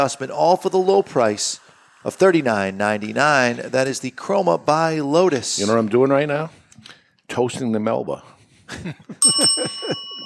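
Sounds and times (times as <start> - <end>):
speech: 0.0 - 10.1
bright bell ding: 9.2 - 10.2.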